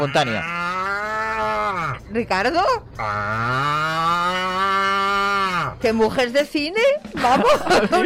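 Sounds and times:
speech: 0.0s - 0.6s, 1.9s - 4.8s, 5.6s - 8.0s
person imitating a cow's moo in a voice message: 0.0s - 2.1s, 3.0s - 5.8s
laughter: 7.1s - 8.0s.

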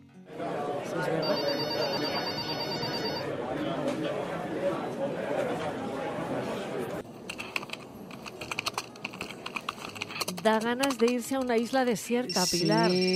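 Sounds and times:
busy office chatter: 0.2s - 13.1s
mobile phone ringing with bright electronic ringtone: 1.2s - 3.3s, 12.3s - 13.1s
brisk keyboard typing: 7.2s - 13.1s
speech: 10.4s - 13.1s.

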